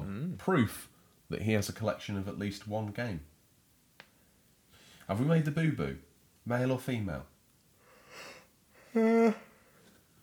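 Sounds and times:
speech: 0.4s - 3.3s, 5.1s - 7.3s, 8.9s - 9.5s
person yawning: 8.1s - 9.6s.

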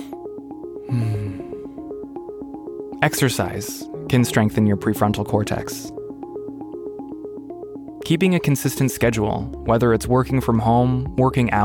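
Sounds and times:
soft steady music: 0.0s - 11.6s
deep audible breath: 0.8s - 1.9s
speech: 0.9s - 1.2s, 3.0s - 6.0s, 8.1s - 11.6s.

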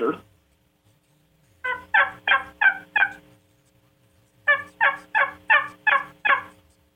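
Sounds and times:
male wild turkey gobbling in rattling bursts: 1.6s - 3.2s, 4.5s - 6.6s.

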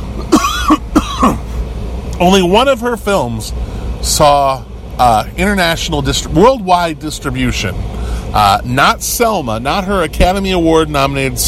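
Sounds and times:
person coughing: 0.2s - 1.4s
speech: 2.2s - 11.4s.

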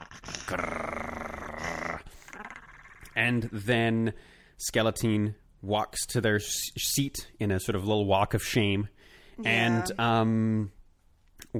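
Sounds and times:
person growling low and rumbling: 0.0s - 3.2s
speech: 0.5s - 0.8s, 3.2s - 10.8s
breathy sounds: 4.1s - 4.6s, 9.0s - 9.4s.

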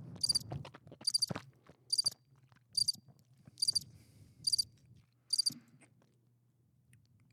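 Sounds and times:
crickets chirping: 0.2s - 0.4s, 1.0s - 1.3s, 1.9s - 2.2s, 2.8s - 3.0s, 3.6s - 3.8s, 4.4s - 4.6s, 5.3s - 5.6s.

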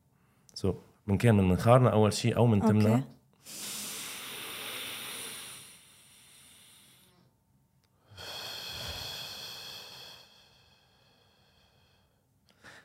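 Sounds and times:
speech: 0.6s - 3.7s
deep belly breathing demonstration inhale and exhale: 3.4s - 12.8s.

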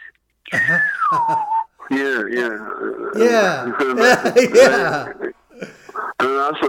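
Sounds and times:
speech: 0.5s - 1.5s, 2.2s - 5.2s, 6.5s - 6.6s
voices and chuckling: 0.5s - 1.7s, 3.2s - 6.0s
person whistling a melodic phrase: 0.6s - 1.7s.

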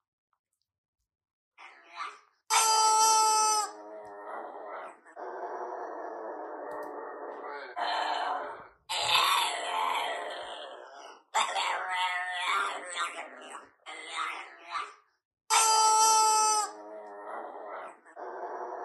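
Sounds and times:
squeaky rubber chicken toy: 2.5s - 3.8s, 15.5s - 16.8s
pug howling and moaning: 2.5s - 13.4s, 15.5s - 18.8s.

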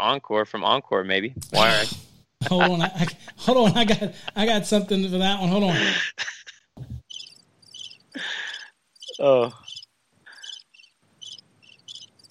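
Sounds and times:
speech: 0.0s - 6.4s, 9.2s - 9.6s
person exclaiming: 1.6s - 2.0s
laughter: 1.6s - 7.0s
crickets chirping: 7.0s - 12.2s.

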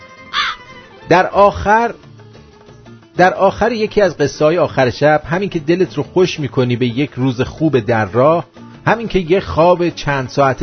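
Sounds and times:
crow cawing: 0.3s - 0.8s
speech: 1.1s - 2.0s, 3.2s - 10.6s.

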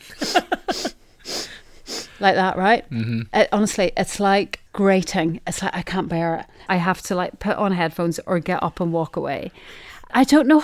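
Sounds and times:
person imitating harsh nose sniffing heard in China: 0.0s - 2.2s
speech: 2.2s - 10.6s.

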